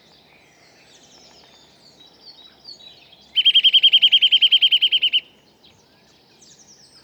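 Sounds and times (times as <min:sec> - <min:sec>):
Eurasian nuthatch Sitta europaea whistled trill: 0:03.4 - 0:05.2.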